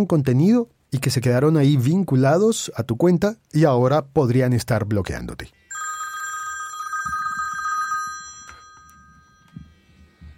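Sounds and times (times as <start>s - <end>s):
speech: 0.0s - 5.6s
warbling electronic telephone ring with an incoming call: 5.7s - 9.8s.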